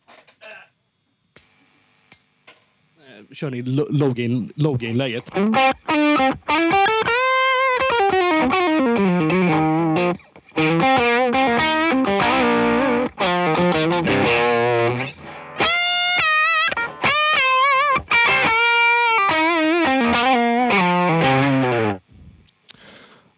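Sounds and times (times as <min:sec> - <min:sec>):
speech: 0:03.2 - 0:06.7
heavily distorted electric guitar played through an amplifier: 0:04.0 - 0:22.1.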